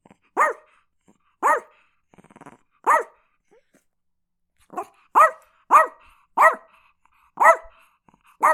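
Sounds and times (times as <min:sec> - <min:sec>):
Chihuahua yapping: 0:00.4 - 0:00.6, 0:01.4 - 0:01.7, 0:02.8 - 0:03.1, 0:04.8 - 0:06.6.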